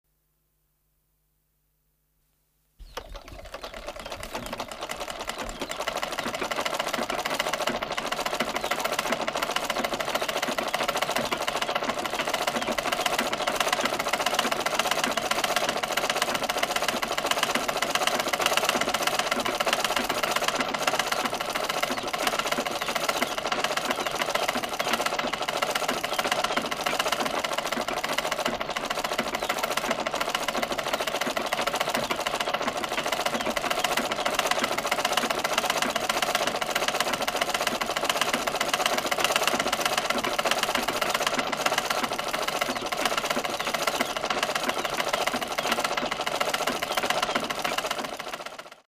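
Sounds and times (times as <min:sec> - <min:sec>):
industrial hand sewing machine: 0:02.8 - 0:48.8.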